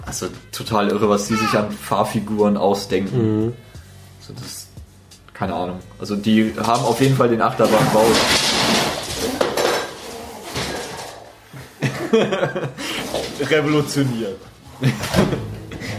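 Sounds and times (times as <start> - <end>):
speech: 0.1 - 3.7, 4.3 - 4.7, 5.4 - 8.8, 12.1 - 15.6
dishes and a small glass clattering, knocked about by house cats: 7.7 - 11.2
people laughing: 11.8 - 13.0, 14.8 - 15.9.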